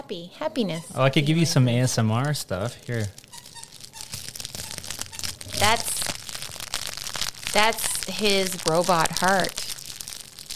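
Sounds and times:
speech: 0.1 - 3.2, 5.6 - 5.9, 7.6 - 9.8
faint squeaks: 0.4 - 6.1
crinkling and rustling of dog toy: 0.8 - 10.5
dog playing with a toy: 3.2 - 5.8.

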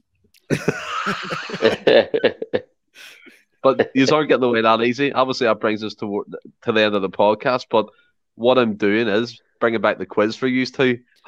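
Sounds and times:
person chuckling in short breathy bursts: 0.4 - 4.0
person coughing deliberately: 0.5 - 2.1
speech: 0.5 - 2.6, 3.6 - 11.2.

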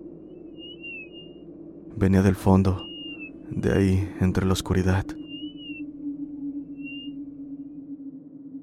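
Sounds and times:
steady low rumble: 0.0 - 8.6
thin high whistle echoing in a huge house: 0.3 - 1.4, 2.7 - 3.4, 5.1 - 8.6
speech: 2.0 - 2.9, 3.5 - 5.2.

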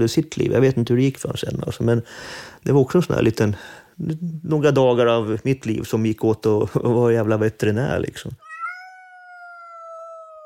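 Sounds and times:
speech: 0.0 - 8.4
cat in a prison meowing: 8.4 - 10.4.

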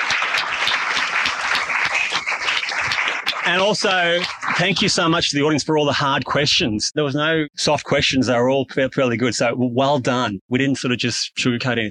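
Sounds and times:
sizable audience applauding: 0.0 - 5.5
speech: 3.5 - 11.9.

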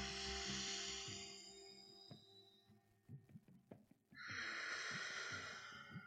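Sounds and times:
steady low hum: 0.0 - 2.4
Ujjayi breathing through the nose in yoga: 4.4 - 6.0.

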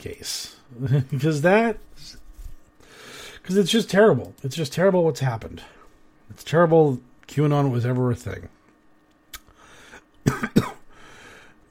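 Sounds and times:
speech: 0.0 - 2.2, 3.5 - 8.6
harsh coughs from a dry throat: 10.2 - 10.9.

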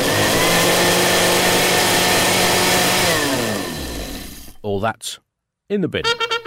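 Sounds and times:
food processor whisking toast with peanut butter, jam and tartar sauce: 0.0 - 4.5
speech: 4.7 - 6.3.

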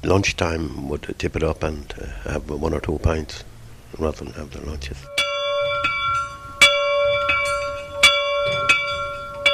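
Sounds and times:
speech: 0.0 - 5.2
low rumble: 0.0 - 9.5
large old factory bell ringing: 5.1 - 9.5.

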